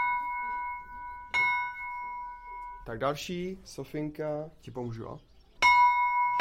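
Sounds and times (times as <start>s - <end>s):
small church death-knell bell ringing: 0.0s - 3.0s, 5.6s - 6.3s
speech: 2.9s - 5.3s.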